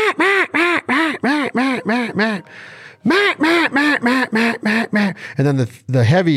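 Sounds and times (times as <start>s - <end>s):
duck call imitating young hen mallard quacks: 0.0s - 2.4s, 3.1s - 5.2s
speech: 2.0s - 6.3s.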